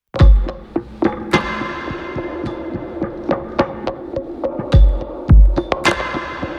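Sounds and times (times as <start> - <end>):
layered lo-fi drum track with sample-driven kick and snare beat: 0.2 - 6.5.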